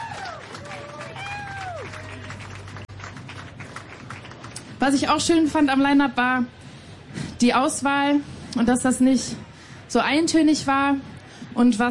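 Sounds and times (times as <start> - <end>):
sliding whistles and cheers: 0.0 - 2.3
festival crowd clapping: 0.0 - 4.8
speech: 4.8 - 6.6, 7.4 - 11.8.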